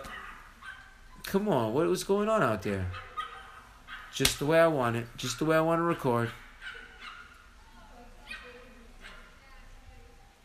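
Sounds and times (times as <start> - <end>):
dogs barking: 0.0 - 1.3, 2.8 - 4.6, 6.2 - 7.6, 8.3 - 9.4
speech: 1.3 - 3.1, 4.2 - 6.4.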